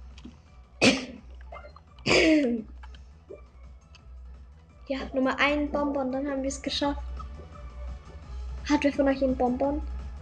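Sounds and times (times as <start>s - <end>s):
person coughing: 0.8s - 1.2s, 2.0s - 2.7s
speech: 2.0s - 2.7s, 4.9s - 7.1s, 8.7s - 9.9s.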